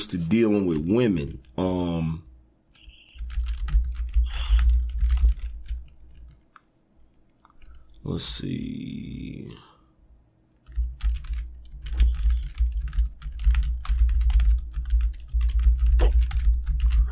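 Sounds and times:
low steady hum: 0.0s - 17.1s
speech: 0.1s - 2.3s, 8.0s - 9.7s
typing on a computer keyboard: 2.7s - 6.4s, 10.6s - 17.1s.

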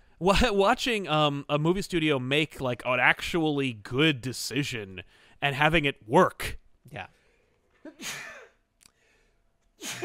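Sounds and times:
speech: 0.2s - 7.2s, 7.8s - 8.4s, 9.8s - 10.0s
person sneezing: 7.9s - 8.6s, 9.8s - 10.0s.

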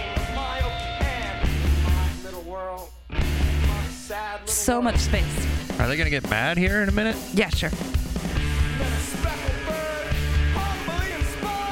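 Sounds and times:
loud post-punk screamo drumming with heavy rapid hits and rolls: 0.0s - 2.5s, 3.2s - 11.7s
driving band playing: 0.0s - 11.7s
speech: 4.5s - 8.3s.

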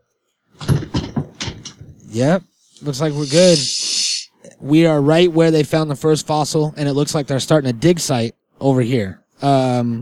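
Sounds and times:
door opening with rattling clunks: 0.6s - 2.0s
speech: 2.1s - 3.8s, 4.6s - 9.9s.

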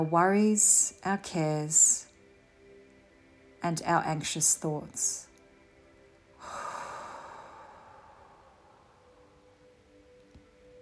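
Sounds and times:
speech: 0.0s - 2.0s, 3.6s - 5.3s
deep slow breath during a guided Christian prayer: 6.4s - 9.4s.

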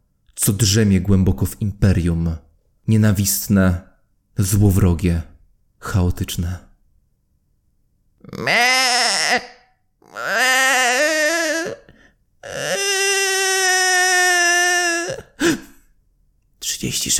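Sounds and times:
speech: 0.4s - 6.7s, 8.2s - 9.5s, 16.8s - 17.1s
baby crying strangely and eerily: 8.2s - 15.7s.

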